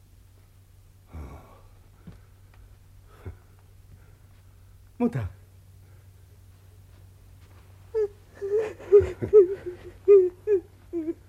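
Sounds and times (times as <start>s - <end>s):
low steady hum: 0.0s - 11.2s
speech: 5.0s - 5.4s
woman weeping for her son: 7.9s - 11.2s.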